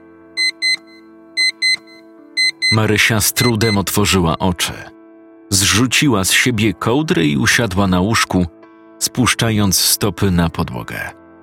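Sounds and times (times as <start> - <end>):
electronic alarm clock beeping in high-pitched pairs: 0.4 - 3.9
speech: 2.7 - 5.0, 5.6 - 11.2.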